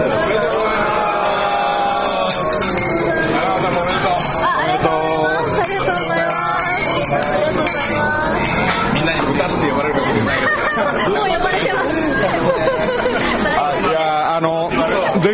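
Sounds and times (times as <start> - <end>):
lively crowd chatter and murmuring voices: 0.0 - 15.3
glasses clinking in a toast to award winners: 1.8 - 13.6
laughter: 9.2 - 15.3.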